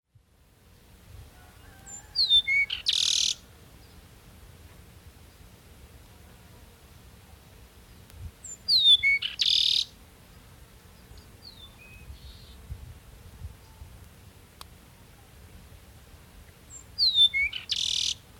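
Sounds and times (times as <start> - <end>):
Peruvian meadowlark Sturnella bellicosa song: 1.1 - 4.2, 7.9 - 15.4, 16.0 - 18.3.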